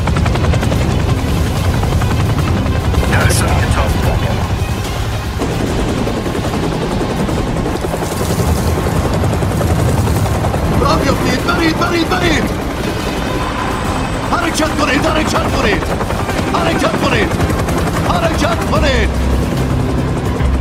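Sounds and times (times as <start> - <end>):
approaching helicopter rotor thumping: 0.0 - 20.5.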